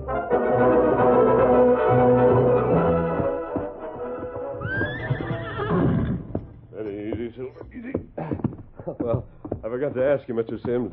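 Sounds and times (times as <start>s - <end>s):
horse hooves clip-clopping: 0.3s - 10.9s
horse neighing with a loud quivering whinny: 4.5s - 6.6s
speech: 10.2s - 10.9s.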